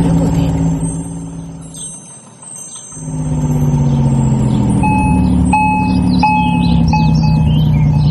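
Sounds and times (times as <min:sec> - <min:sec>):
light bird chirps: 0:00.0 - 0:08.1
street watering truck engine rumbling: 0:00.0 - 0:08.1
short electronic beeps: 0:04.8 - 0:08.1.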